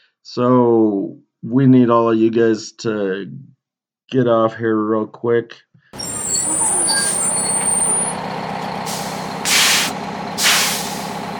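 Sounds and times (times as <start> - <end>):
speech: 0.2 - 3.5, 4.1 - 6.0
bus air brakes hissing: 6.0 - 11.3
bus engine idling with low rumble: 6.0 - 11.3.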